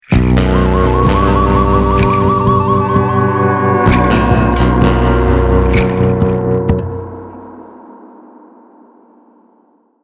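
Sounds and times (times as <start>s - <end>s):
lost round game music: 0.2s - 7.3s.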